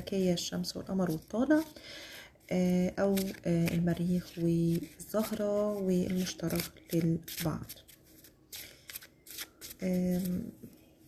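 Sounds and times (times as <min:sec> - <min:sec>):
speech: 0:00.0 - 0:07.8, 0:09.8 - 0:10.7
cards being shuffled for an astrology reading: 0:03.0 - 0:10.5.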